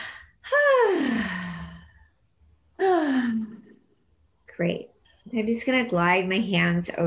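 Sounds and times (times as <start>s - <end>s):
deep audible breaths: 0.0s - 3.6s
speech: 4.6s - 7.0s.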